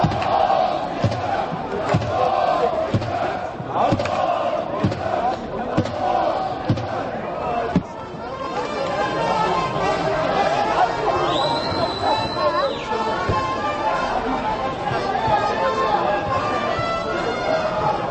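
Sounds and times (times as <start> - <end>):
steady rhythmic thumping beats under stadium crowd: 0.0 - 8.0
Kazakh football fans chanting and cheering in a stadium: 0.0 - 18.0.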